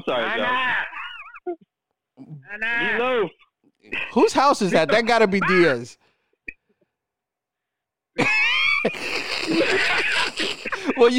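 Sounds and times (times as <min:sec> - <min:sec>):
speech: 0:00.0 - 0:00.8, 0:02.5 - 0:06.0, 0:08.2 - 0:11.1
man yelling: 0:00.0 - 0:01.0, 0:02.4 - 0:03.3, 0:04.2 - 0:06.0
laughter: 0:00.0 - 0:01.5, 0:08.2 - 0:11.1.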